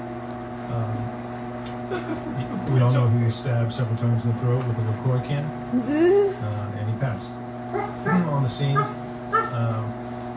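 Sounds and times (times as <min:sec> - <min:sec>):
speech: 0:01.9 - 0:07.4, 0:08.4 - 0:09.0, 0:09.6 - 0:10.0
dog whimpering: 0:05.8 - 0:06.4, 0:07.7 - 0:09.6
dog yipping: 0:07.7 - 0:09.6.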